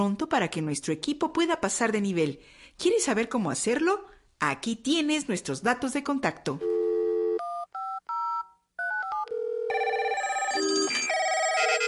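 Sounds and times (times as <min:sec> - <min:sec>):
speech: 0:00.0 - 0:06.8
telephone keypad dialing tones: 0:06.6 - 0:11.8.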